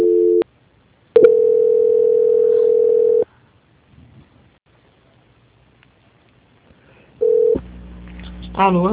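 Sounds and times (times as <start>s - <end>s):
telephone call-transfer tone: 0.0s - 0.4s, 1.2s - 3.2s, 7.2s - 7.6s.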